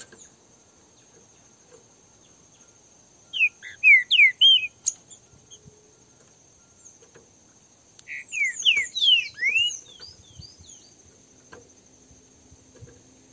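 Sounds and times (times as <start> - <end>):
pair of wild green-winged saltators singing in a song dispute: 3.3 - 5.3, 8.0 - 11.0.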